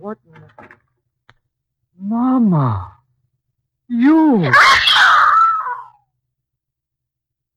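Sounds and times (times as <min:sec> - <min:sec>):
speech: 0:02.4 - 0:02.9, 0:04.3 - 0:04.8
woman screaming in fright: 0:04.2 - 0:05.9.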